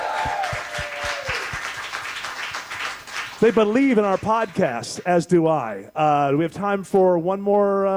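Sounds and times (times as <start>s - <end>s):
crowd applause: 0.0s - 5.0s
speech: 3.4s - 7.9s.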